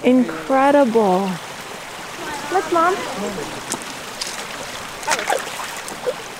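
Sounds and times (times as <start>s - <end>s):
speech: 0.0s - 1.5s, 2.5s - 3.8s
creek water flowing in Fern Canyon, Humboldt County: 0.0s - 6.3s.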